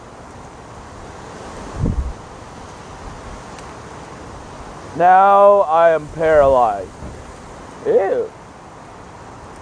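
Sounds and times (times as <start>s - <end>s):
steady blustery wind rushing past the microphone: 1.5s - 2.3s, 5.5s - 7.6s
speech: 5.0s - 7.0s, 7.8s - 8.4s.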